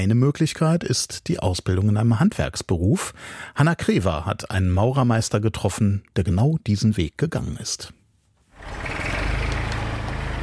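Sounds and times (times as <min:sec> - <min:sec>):
speech: 0:00.0 - 0:08.0
diesel excavator loading crushed mineral concrete into a trailer at a construction site: 0:08.6 - 0:10.4.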